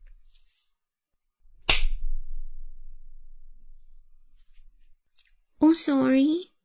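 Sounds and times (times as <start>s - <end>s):
hand slapping a person's buttocks: 1.6s - 2.0s
low rumble: 1.9s - 4.9s
speech: 5.7s - 6.5s.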